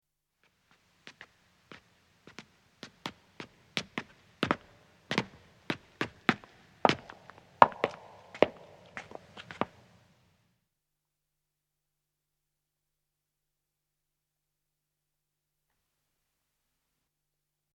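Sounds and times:
footsteps of two men ascending on stone: 0.7 - 9.8.

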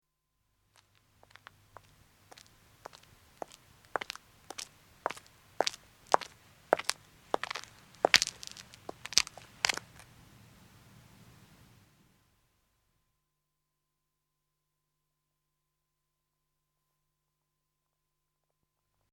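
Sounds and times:
woman's footsteps walking on road: 0.8 - 10.3.

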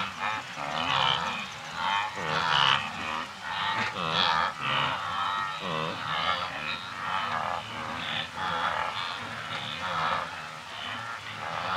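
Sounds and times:
birds in Kenya: 0.0 - 11.7
insects in Kenya: 0.0 - 11.7
wildebeest herd grunting in Kenya: 0.0 - 11.7.

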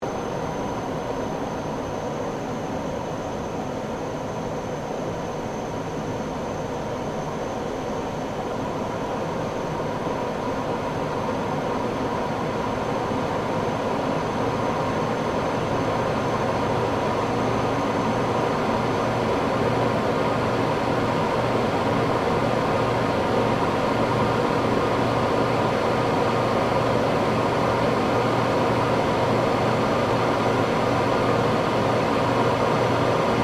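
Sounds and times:
1947 Gloster Meteor F Mk8 fighter jet interior on approach: 0.0 - 33.4.

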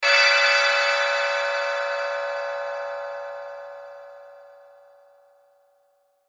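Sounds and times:
bells hit ringing with shimmer: 0.0 - 5.0.

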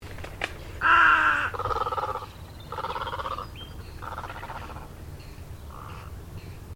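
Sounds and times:
low background rumble: 0.1 - 6.7
plumed egret croaking in Australia: 0.8 - 5.0.

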